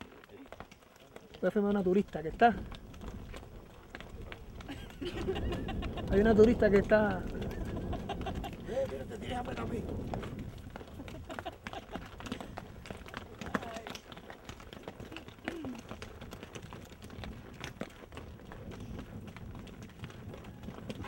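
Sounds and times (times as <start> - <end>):
horse hooves clip-clopping while riding: 0.0 - 21.0
outdoor rustle and noise: 0.0 - 21.0
speech: 1.4 - 2.8, 6.1 - 7.4, 9.3 - 10.2
laughter: 4.6 - 6.4, 7.3 - 9.2, 10.9 - 12.5.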